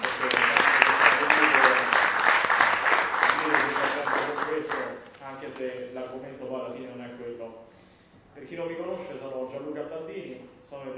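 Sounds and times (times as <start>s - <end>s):
audience applause with many hands clapping: 0.0s - 5.0s.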